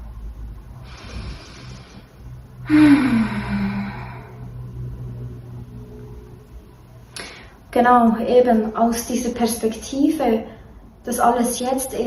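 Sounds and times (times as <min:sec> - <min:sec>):
slow deep breathing exercise inhale and exhale: 0:00.8 - 0:04.6
speech: 0:02.7 - 0:03.2, 0:07.8 - 0:12.0.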